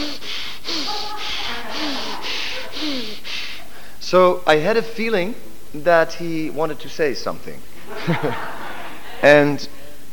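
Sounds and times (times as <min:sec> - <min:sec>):
laughter: 0:00.0 - 0:03.8, 0:07.8 - 0:10.0
person imitating rapid fire-breath breathing exercise: 0:00.0 - 0:04.0
speech: 0:04.1 - 0:08.6, 0:09.2 - 0:10.1.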